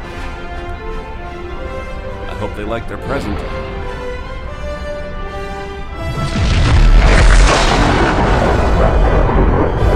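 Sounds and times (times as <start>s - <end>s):
speech: 2.4s - 3.8s
huge explosion of detonated pods packed with liquid fuel and oxygen: 6.0s - 9.9s.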